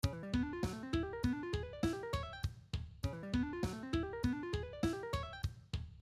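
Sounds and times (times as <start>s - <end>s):
guitar playing chromatic diminished ascending string skipping exercises: 0.0s - 2.4s, 3.1s - 5.4s.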